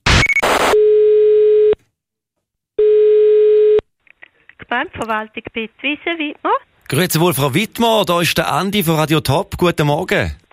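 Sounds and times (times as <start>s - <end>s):
telephone ringback tone on an outgoing call to a municipal office: 0.8s - 1.8s, 2.8s - 3.8s
speech: 4.7s - 10.4s.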